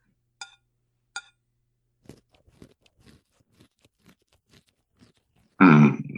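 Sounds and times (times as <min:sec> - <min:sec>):
wet chewing of a mouthful of omelet: 0:02.0 - 0:05.6.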